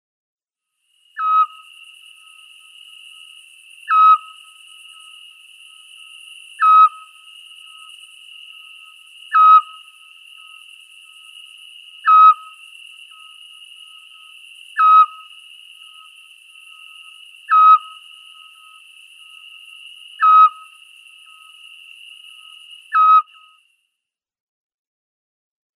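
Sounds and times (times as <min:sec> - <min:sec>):
male European Scops-Owl display call: 0:01.2 - 0:01.6, 0:03.8 - 0:04.4, 0:06.6 - 0:07.2, 0:09.3 - 0:10.6, 0:12.0 - 0:13.4, 0:14.7 - 0:15.3, 0:17.4 - 0:18.8, 0:20.2 - 0:21.4, 0:22.9 - 0:23.5.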